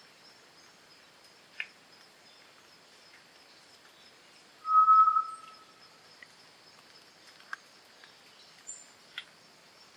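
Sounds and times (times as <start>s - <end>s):
Solitary tinamou song: 4.6s - 5.6s.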